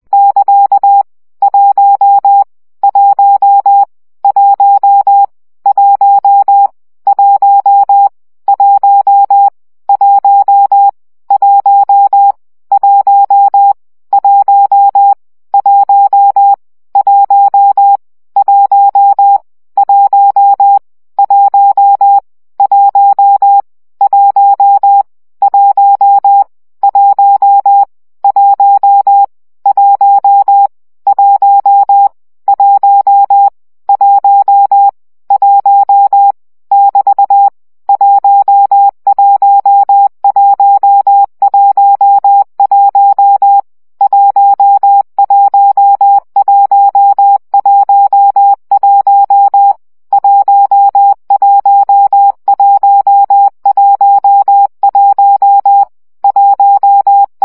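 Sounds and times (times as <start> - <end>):
CW Morse code practice at 17 baud: 0.1 - 57.4.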